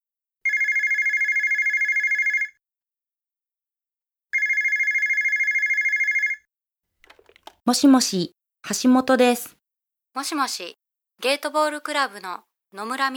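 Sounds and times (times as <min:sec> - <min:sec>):
telephone ringing with a trilling electronic bell: 0:00.5 - 0:02.6, 0:04.4 - 0:06.4
speech: 0:07.7 - 0:09.6, 0:10.2 - 0:13.1.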